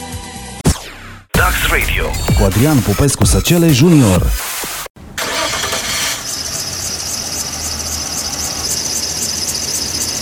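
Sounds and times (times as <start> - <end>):
speech: 1.5 - 4.6
car engine cranking without catching: 5.1 - 10.2.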